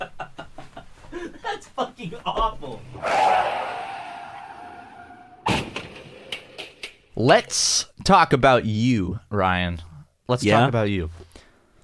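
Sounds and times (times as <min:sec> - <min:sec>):
speech: 0:01.5 - 0:03.5, 0:07.2 - 0:11.2
tires skidding in a car crash: 0:02.9 - 0:05.5
car crash sound effect: 0:03.0 - 0:06.6.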